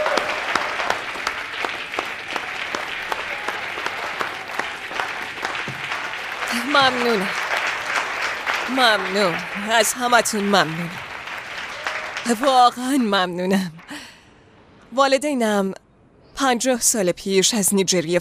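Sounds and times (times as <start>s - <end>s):
voice rising over the clapping: 0.0s - 14.0s
crowd applauding a candidate for attorney general on stage: 0.0s - 14.1s
speech: 6.8s - 7.4s, 8.7s - 11.0s, 12.2s - 13.8s, 14.9s - 15.8s, 16.4s - 18.1s.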